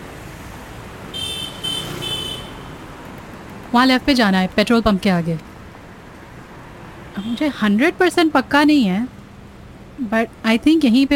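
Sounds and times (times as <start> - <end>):
busy street traffic with steady road rumble: 0.0 - 11.1
high buzzy vehicle horn beeps: 1.1 - 2.7
speech: 3.7 - 5.5, 7.2 - 9.2, 10.0 - 11.1.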